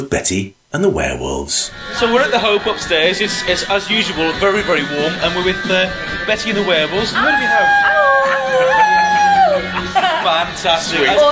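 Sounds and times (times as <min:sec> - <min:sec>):
speech: 0:00.0 - 0:07.9, 0:10.3 - 0:11.3
laughter: 0:07.1 - 0:11.3
several people howling like wolves: 0:07.2 - 0:10.0.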